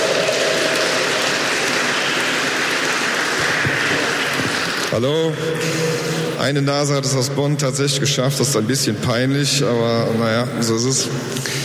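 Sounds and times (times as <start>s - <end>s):
audience applause: 0.0s - 5.0s
speech: 4.9s - 11.6s.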